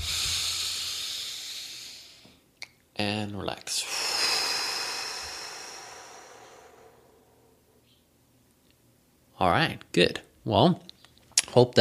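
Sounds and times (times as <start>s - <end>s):
deep breath during a guided relaxation tapping exercise: 0.0s - 2.4s, 3.7s - 7.8s
speech: 3.0s - 3.9s, 9.4s - 10.9s, 11.6s - 11.7s.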